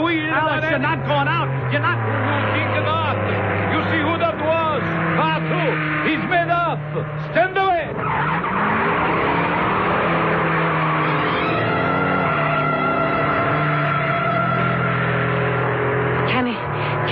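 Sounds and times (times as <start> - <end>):
racing car engine roaring around a track curve: 0.0 - 17.1
speech: 0.6 - 2.8.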